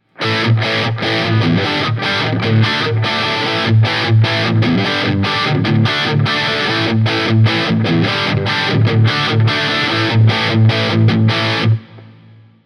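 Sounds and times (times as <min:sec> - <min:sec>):
distorted electric guitar with humbuckers: 0:00.0 - 0:12.6.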